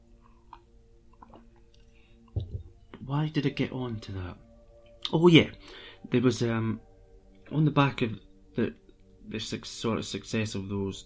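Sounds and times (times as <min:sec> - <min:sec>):
person sipping coffee with faint slurps: 0:00.1 - 0:02.4
mug being set down: 0:02.4 - 0:02.8
speech: 0:03.1 - 0:04.5, 0:05.1 - 0:06.9, 0:07.5 - 0:11.0.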